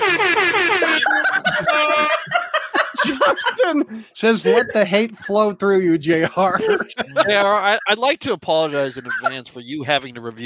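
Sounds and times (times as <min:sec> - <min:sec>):
loud blaring air horn blasts and honks: 0:00.0 - 0:02.3
laughter: 0:00.6 - 0:05.5, 0:06.1 - 0:08.1, 0:08.7 - 0:09.5
speech: 0:03.7 - 0:10.4.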